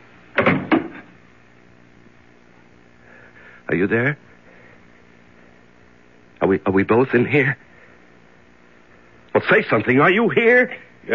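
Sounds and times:
door shutting: 0.4s - 1.1s
speech: 3.7s - 4.4s, 6.5s - 7.7s, 9.4s - 11.1s.

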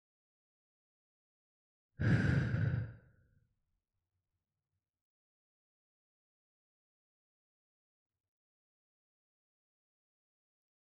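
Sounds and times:
deep breath let out as a long audible sigh: 2.0s - 3.1s.

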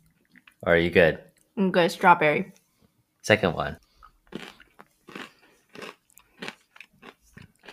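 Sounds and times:
speech: 0.6s - 2.6s, 3.2s - 4.5s
crunchy snack being chewed: 3.8s - 7.7s.

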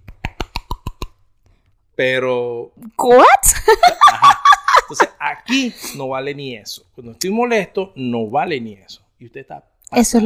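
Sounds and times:
voice imitating wet rubber flip-flops slapping while walking fast: 0.0s - 1.2s
speech: 2.0s - 10.2s
laughter: 3.6s - 5.2s.

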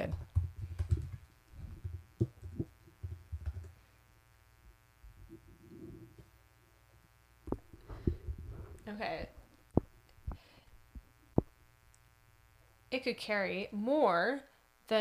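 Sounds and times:
clacking of keys on a computer keyboard: 0.0s - 3.8s
low steady hum: 0.0s - 14.9s
speech: 9.0s - 9.3s, 12.9s - 14.9s.

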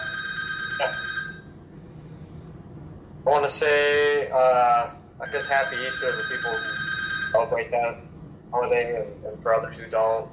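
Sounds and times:
telephone ringing with a bright electronic tone: 0.0s - 1.5s, 5.2s - 7.6s
speech: 0.8s - 1.1s, 3.3s - 10.3s.

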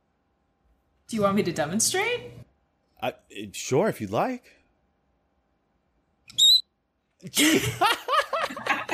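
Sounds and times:
speech: 1.1s - 2.4s, 3.0s - 4.6s, 7.2s - 8.2s
person making a high-pitched whistle-like vocal squeak: 6.3s - 6.6s
person giggling: 7.2s - 8.9s.

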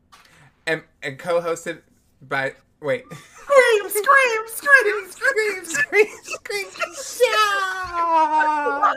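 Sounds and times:
speech: 0.7s - 8.9s
laughter: 3.1s - 8.9s
person screaming and wailing in frustration: 6.8s - 8.9s.

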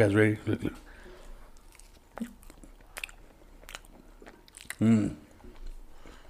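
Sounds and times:
someone biting and chewing tortilla chips covered in crema, corn and cotija cheese: 1.2s - 5.9s.

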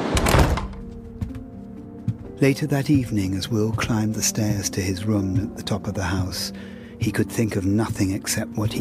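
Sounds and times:
door swinging shut with a solid heavy thud: 0.1s - 1.1s
speech: 2.4s - 8.7s.

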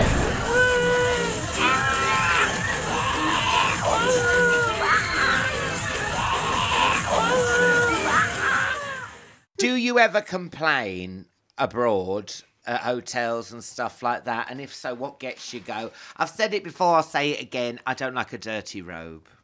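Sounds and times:
live audience screaming and shrieking: 0.0s - 9.4s
speech: 10.0s - 19.4s.

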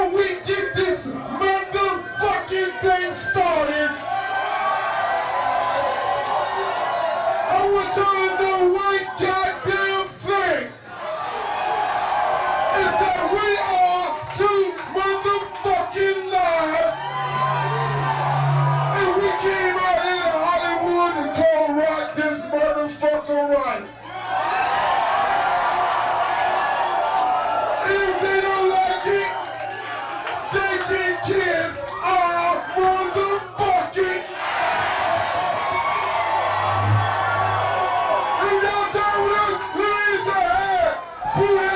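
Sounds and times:
nightclub crowd cheering and shouting at a rap concert: 0.0s - 41.7s
low hum: 16.8s - 19.4s, 35.6s - 38.4s.

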